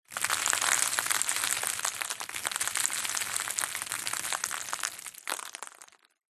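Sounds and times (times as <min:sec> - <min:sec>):
debris, dust and dirt on a noisy land surface: 0:00.1 - 0:06.2.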